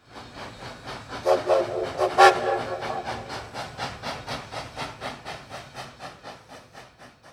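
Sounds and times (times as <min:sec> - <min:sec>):
steam train chuffing as it pulls away from a station: 0:00.0 - 0:07.3
steam train whistle blast: 0:01.2 - 0:03.2.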